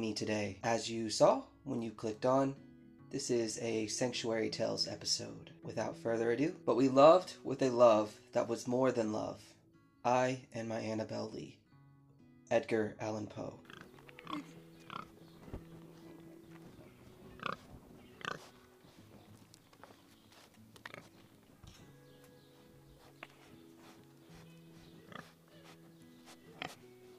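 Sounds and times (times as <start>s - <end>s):
speech: 0.0s - 11.6s, 12.5s - 13.7s, 14.3s - 14.5s
pig grunting and oinking: 13.6s - 19.3s, 20.8s - 21.2s, 22.5s - 26.9s
pig snuffling: 13.6s - 27.1s.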